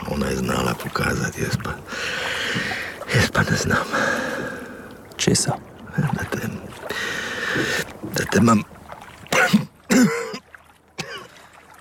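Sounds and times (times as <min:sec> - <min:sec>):
speech: 0:00.2 - 0:04.4, 0:05.2 - 0:08.8
person coughing in rough, husky bursts: 0:09.3 - 0:10.4, 0:11.0 - 0:11.3.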